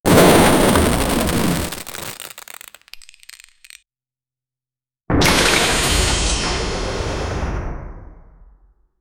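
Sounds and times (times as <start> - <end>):
explosion: 0.0 - 2.7, 5.1 - 8.5.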